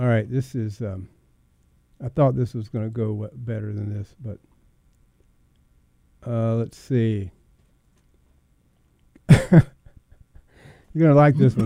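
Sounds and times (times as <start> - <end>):
speech: 0.0 - 1.2, 2.0 - 4.5, 6.2 - 7.4, 9.3 - 9.8, 10.9 - 11.6
loud coughs: 9.3 - 9.8
breaths: 10.4 - 11.0.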